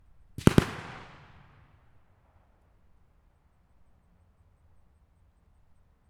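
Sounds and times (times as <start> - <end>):
M1918 Browning Automatic Rifle .30 calibre double shots: 0.4 - 1.8.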